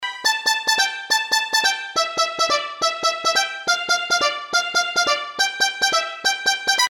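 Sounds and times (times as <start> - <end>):
pizzicato strings: 0.0 - 6.8.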